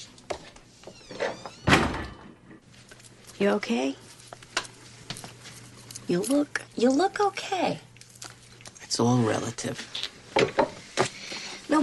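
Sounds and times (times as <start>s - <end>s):
door creaking as it swings shut: 0.8s - 2.4s
door closing with a solid thunk: 1.1s - 2.4s
speech: 3.4s - 4.0s, 6.1s - 7.9s, 9.0s - 10.0s.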